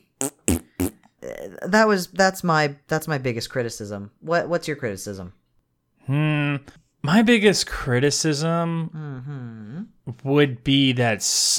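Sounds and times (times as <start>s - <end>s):
voice imitating fart noises and a buzzing raspberry: 0.0s - 1.0s
speech: 1.5s - 5.4s, 6.1s - 11.5s.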